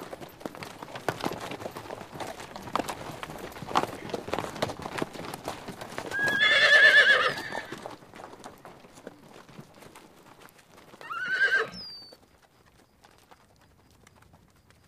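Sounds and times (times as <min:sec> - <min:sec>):
horse hooves clopping: 0:00.0 - 0:14.8
horse whinnying: 0:06.1 - 0:07.8, 0:11.0 - 0:12.1.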